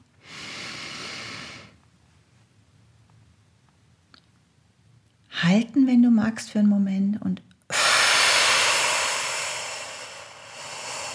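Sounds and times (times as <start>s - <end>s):
deep breathy inhale into the belly: 0.2s - 1.8s, 7.7s - 11.1s
speech: 5.4s - 7.5s.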